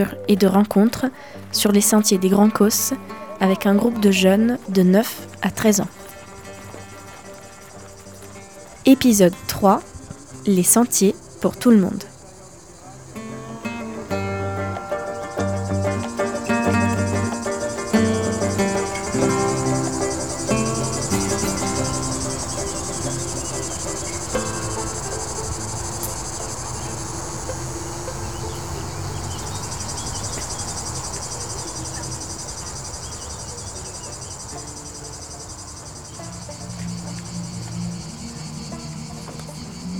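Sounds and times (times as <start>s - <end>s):
speech: 0.0s - 6.1s, 8.8s - 12.1s
cicadas chirring on walking trails of the Grands Causses: 0.0s - 39.9s
softer lower tonal layer: 1.7s - 39.9s.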